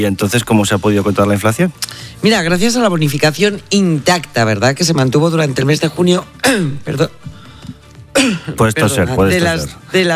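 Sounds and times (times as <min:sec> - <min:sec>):
speech: 0:00.0 - 0:07.4, 0:08.2 - 0:10.1
woman coughing and clearing her throat: 0:06.4 - 0:07.0, 0:08.1 - 0:08.6.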